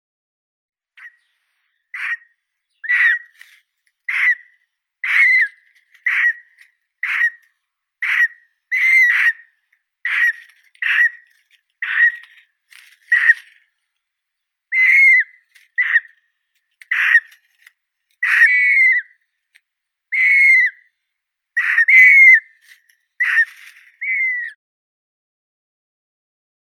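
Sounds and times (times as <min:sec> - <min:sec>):
young great bustard Otis tarda calling: 0:01.9 - 0:13.5, 0:14.7 - 0:16.1, 0:16.8 - 0:17.4, 0:18.2 - 0:19.2, 0:20.1 - 0:20.8, 0:21.6 - 0:22.5, 0:23.2 - 0:24.5.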